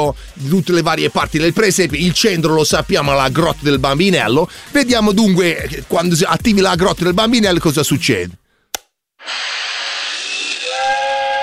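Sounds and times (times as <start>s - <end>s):
speech: 0.0s - 8.4s
steam hiss from a nativity scene steam train: 9.2s - 10.7s
steam train whistle in a nativity scene: 10.5s - 11.4s.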